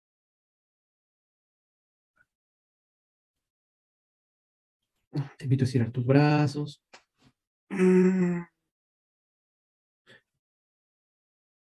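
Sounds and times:
speech: 5.1s - 7.0s, 7.7s - 8.5s
person yawning with a steady humming tone: 7.7s - 8.5s.

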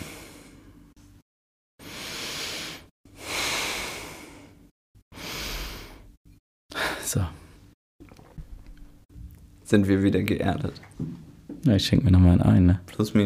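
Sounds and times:
slow deep breathing in and out: 0.0s - 1.0s, 1.8s - 7.1s
speech: 7.1s - 7.4s, 9.7s - 13.2s.

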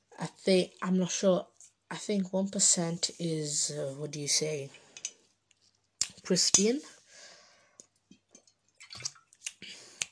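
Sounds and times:
speech: 0.3s - 4.8s, 6.3s - 7.0s
person gulping water: 8.2s - 10.0s.

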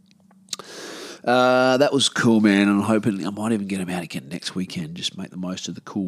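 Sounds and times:
person sipping tequila: 0.5s - 0.8s
soft breathy hiss: 0.5s - 1.5s
speech: 1.2s - 6.0s.

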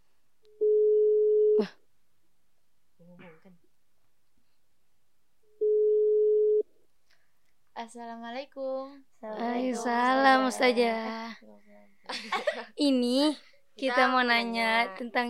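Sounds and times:
ringback tone of an outgoing telephone call: 0.6s - 1.6s, 5.6s - 6.6s
speech: 1.6s - 1.8s, 7.9s - 15.2s
laughter: 12.1s - 12.8s.

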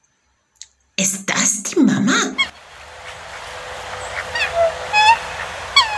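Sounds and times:
steady outdoor hiss: 0.0s - 5.9s
speech: 1.0s - 2.4s
swan giving loud nasal honking calls: 2.4s - 5.9s.

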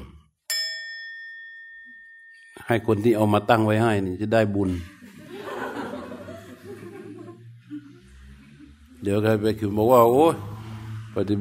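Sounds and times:
meditation bell struck and ringing: 0.5s - 4.2s
speech: 2.6s - 5.0s, 9.0s - 10.5s, 11.2s - 11.3s
laughter: 4.6s - 8.8s.

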